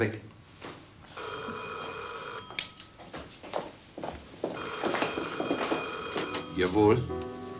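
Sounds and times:
speech: 0.0 - 0.3, 6.6 - 7.2
telephone ringing with a long bright trilling ring late at night: 1.1 - 3.0, 4.6 - 7.1.

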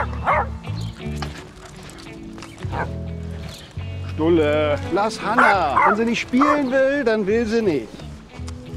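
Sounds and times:
dog barking: 0.0 - 0.5, 2.7 - 3.0, 5.4 - 6.7
speech: 4.2 - 8.0.

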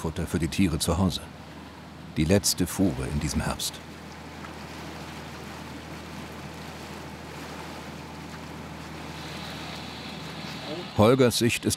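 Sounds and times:
speech: 0.0 - 1.4, 2.2 - 3.9, 11.0 - 11.7
engine drone of a pushed barge convoy carrying hay: 0.0 - 11.7
water rushing: 0.0 - 11.7.

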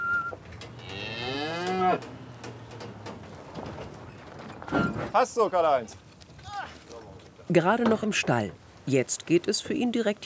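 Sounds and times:
low rustling: 0.4 - 9.6
breeding bull mooing inside a livestock trailer: 0.7 - 3.1
speech: 1.9 - 2.2, 5.2 - 6.0, 7.5 - 10.2.

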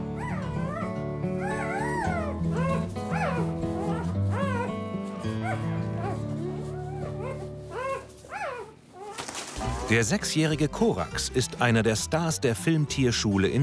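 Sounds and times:
newborn puppies whimpering and yipping: 0.2 - 10.0
speech: 9.9 - 13.6.

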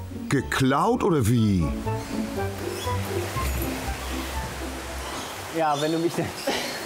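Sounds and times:
speech: 0.3 - 3.3, 5.5 - 6.5
fresh leafy bush branches rustling in a zoo enclosure: 1.7 - 6.8.

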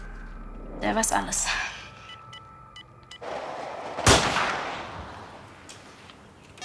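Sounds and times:
speech: 0.8 - 1.7
hunting rifle shot: 3.3 - 5.6.

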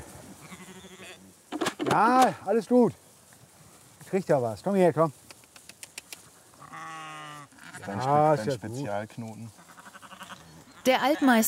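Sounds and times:
Shropshire sheep giving a wavering drawn-out bleat: 0.4 - 1.3, 6.5 - 11.3
speech: 1.9 - 3.0, 4.1 - 5.2, 7.9 - 9.6, 10.8 - 11.4.

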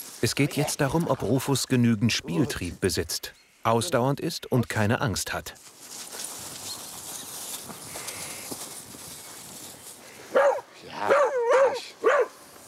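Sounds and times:
speech: 0.2 - 5.7
dog barking excitedly during play: 10.3 - 12.6.

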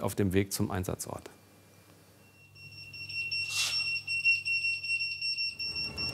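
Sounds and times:
speech: 0.0 - 1.4
fire brigade electronic alarm tone: 2.3 - 6.1.

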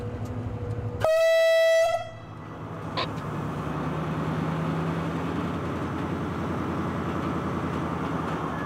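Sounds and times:
train rumbling on a slow shunting move at a terminal: 0.0 - 8.6
train horn blast at a terminal: 1.0 - 2.2.

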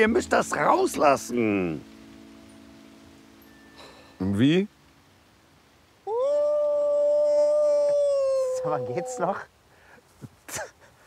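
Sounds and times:
speech: 0.0 - 1.9, 4.2 - 4.8, 8.6 - 9.5, 10.5 - 10.7
person imitating a wolf howl: 6.0 - 9.5.

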